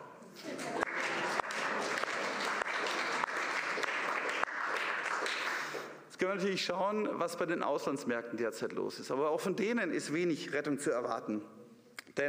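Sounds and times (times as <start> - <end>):
audience applause: 0.5 - 5.9
speech: 6.2 - 11.6.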